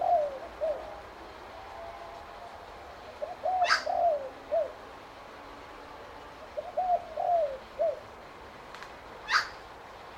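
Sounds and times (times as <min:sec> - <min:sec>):
spotted dove cooing: 0:00.0 - 0:01.1, 0:03.1 - 0:04.8, 0:06.6 - 0:08.1.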